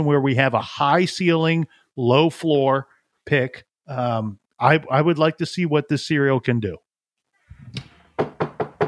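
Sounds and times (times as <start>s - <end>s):
speech: 0.0s - 6.8s, 7.6s - 7.9s
firm knocks on a door: 8.2s - 8.8s.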